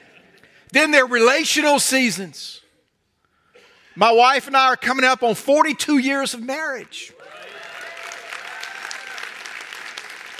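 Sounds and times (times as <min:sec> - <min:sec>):
speech: 0:00.7 - 0:02.6, 0:04.0 - 0:07.4
large audience applauding: 0:07.2 - 0:10.3.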